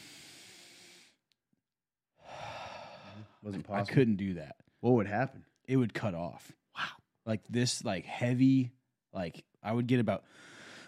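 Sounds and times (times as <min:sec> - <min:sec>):
person attempting a deep breath as a demonstration: 0:00.0 - 0:01.2, 0:02.2 - 0:03.5
speech: 0:03.4 - 0:10.6.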